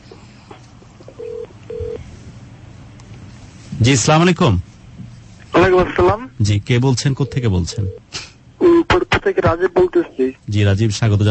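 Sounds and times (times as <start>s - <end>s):
telephone ringing tone while a call is connected: 1.2s - 2.0s, 7.2s - 8.0s
speech: 3.8s - 4.7s, 5.6s - 8.1s, 9.2s - 11.3s.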